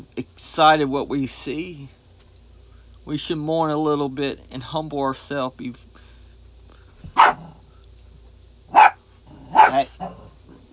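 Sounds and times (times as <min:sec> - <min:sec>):
speech: 0:00.4 - 0:02.0, 0:03.1 - 0:05.9
small dog barking sharply: 0:07.2 - 0:07.6, 0:08.7 - 0:10.5.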